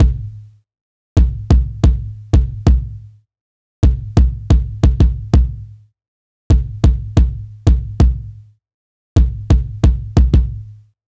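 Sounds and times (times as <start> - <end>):
jazz kick drum: 0.0 - 0.4, 1.2 - 3.1, 3.8 - 5.8, 6.5 - 8.4, 9.2 - 10.7.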